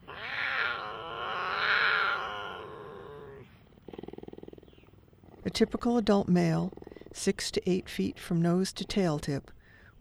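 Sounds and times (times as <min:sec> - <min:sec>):
mountain lion yowling: 0:00.0 - 0:03.5
mountain lion rapid purring-like pulses: 0:03.5 - 0:09.6
speech: 0:05.5 - 0:10.0.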